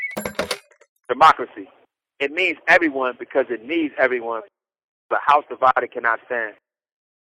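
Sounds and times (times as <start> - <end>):
telephone with steady electronic ringing tone: 0.2 - 0.6
speech: 1.2 - 4.5, 5.1 - 6.6.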